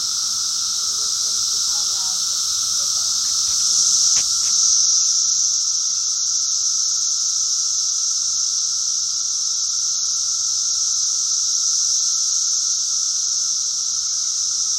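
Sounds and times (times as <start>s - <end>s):
several cicadas droning in a high hissing chorus: 0.0s - 14.7s.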